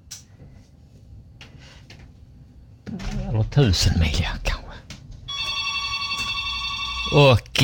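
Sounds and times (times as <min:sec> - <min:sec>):
speech: 0:02.9 - 0:04.5, 0:07.1 - 0:07.6
telephone ringing with a bright electronic tone: 0:05.3 - 0:07.6.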